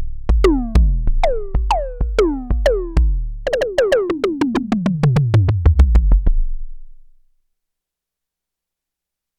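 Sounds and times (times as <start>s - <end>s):
Roland JX-8P synthesizer toms: 0.3s - 6.5s.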